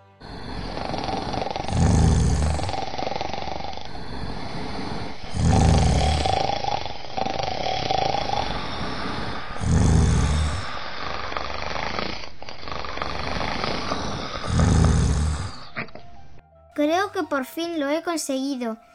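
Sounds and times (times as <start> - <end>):
loud deep rasping snoring: 0.0 - 16.4
speech: 17.1 - 18.9.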